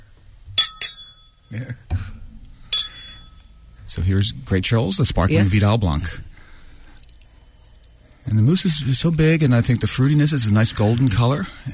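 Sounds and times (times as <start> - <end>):
wine glasses clinking in a toast: 0.6 - 1.7, 2.7 - 3.6
speech: 1.5 - 2.1, 4.1 - 6.3, 8.3 - 11.7.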